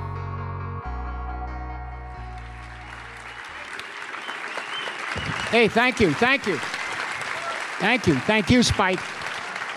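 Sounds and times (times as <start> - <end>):
sustained musical tones: 0.0 - 3.7
audience applause in a theater after a film screening: 2.3 - 9.7
speech: 5.5 - 6.7, 7.8 - 9.2.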